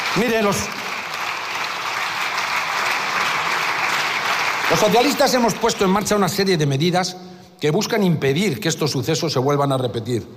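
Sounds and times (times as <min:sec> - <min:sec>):
applause in a parliament chamber: 0:00.0 - 0:06.4
speech: 0:00.2 - 0:00.8, 0:04.7 - 0:10.3.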